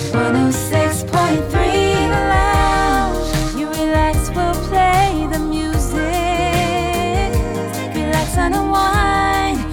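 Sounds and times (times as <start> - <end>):
slogan jingle: 0.2 - 9.6.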